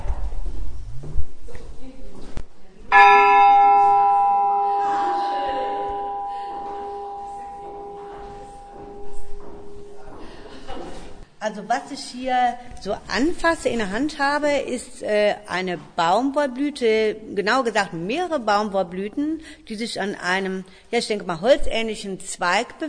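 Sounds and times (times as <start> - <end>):
faint noise: 0.0 - 22.8
bell ringing to mark end of workday: 2.9 - 10.1
speech: 11.6 - 22.8.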